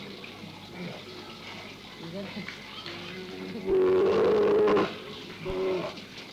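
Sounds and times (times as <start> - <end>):
Hokkaido brown bear calling: 3.0 - 6.1.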